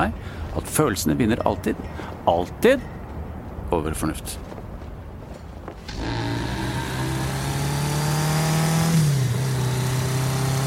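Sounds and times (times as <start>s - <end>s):
speech: 0.0s - 3.0s, 3.7s - 4.5s
car engine droning while driving on a potholed road: 5.9s - 10.6s.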